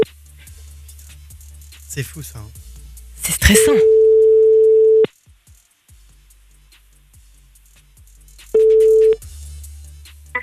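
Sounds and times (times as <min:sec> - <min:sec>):
speech: 0:02.0 - 0:02.6, 0:03.2 - 0:04.1
telephone ringback tone of a call going to an answering machine: 0:03.8 - 0:05.1, 0:08.6 - 0:09.2.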